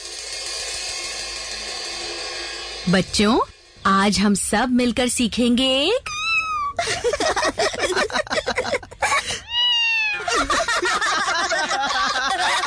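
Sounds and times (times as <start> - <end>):
noise in a classroom: 2.0 - 12.6
speech: 2.9 - 6.1, 6.8 - 8.8
kitten meowing in a classroom: 6.0 - 6.8, 9.4 - 10.5
laughter: 6.8 - 9.4, 10.2 - 12.6.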